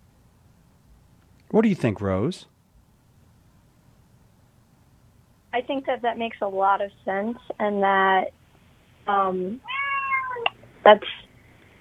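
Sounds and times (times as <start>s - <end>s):
speech: 1.5s - 2.5s, 5.6s - 8.4s, 9.0s - 9.8s, 10.9s - 11.2s
cat meowing: 9.6s - 11.2s.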